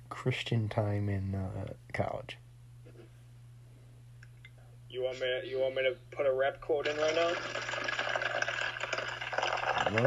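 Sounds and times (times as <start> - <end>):
speech: 0.2 - 2.4, 4.9 - 7.8
stream of liquid pouring: 6.9 - 10.0.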